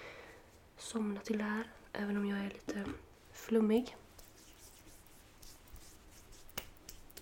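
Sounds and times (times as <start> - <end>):
speech: 0.9 - 4.0
soft pat on skin: 4.0 - 7.1
hand slapping face while applying a skincare product: 5.4 - 7.1.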